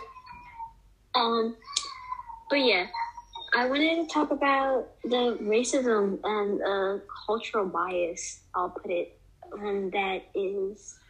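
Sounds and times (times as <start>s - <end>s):
young child crying in short strained wailing bursts: 0.0s - 0.8s, 1.5s - 4.3s
speech: 1.2s - 1.8s, 2.5s - 11.0s.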